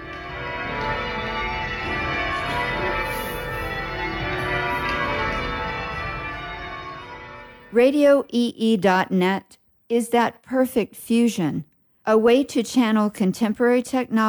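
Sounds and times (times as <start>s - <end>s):
church bells in change-ringing sequences: 0.0s - 7.8s
speech: 7.8s - 14.2s.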